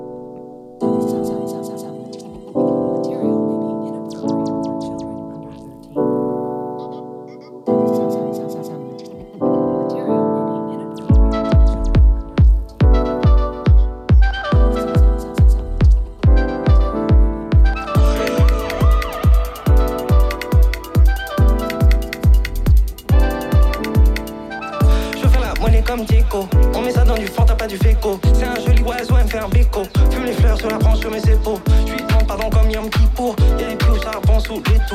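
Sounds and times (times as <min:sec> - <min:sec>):
loud house music synth chords: 0:00.0 - 0:34.9
four-on-the-floor house kick drum thumping: 0:11.1 - 0:24.2, 0:24.8 - 0:34.9.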